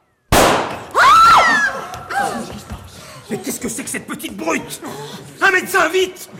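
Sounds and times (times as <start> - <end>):
pistol shot in a stage play: 0.3 - 0.9
speech: 3.4 - 6.3.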